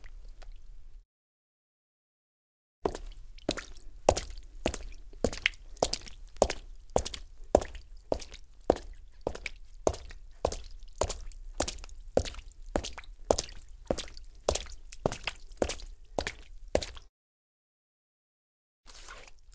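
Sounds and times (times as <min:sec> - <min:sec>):
footsteps on wet cement: 0:02.9 - 0:17.1.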